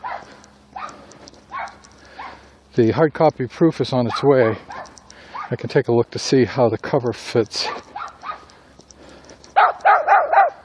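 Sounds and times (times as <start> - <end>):
big dogs barking: 0.0 - 2.5, 4.0 - 5.6, 7.6 - 8.6, 9.4 - 10.6
speech: 2.8 - 4.8, 5.5 - 7.9.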